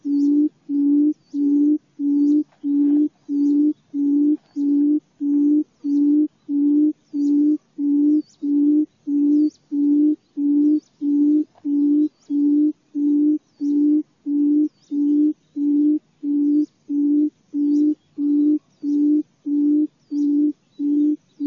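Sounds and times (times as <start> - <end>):
faint high bird chirps: 0.0 - 21.4
quail hooting: 0.0 - 21.4.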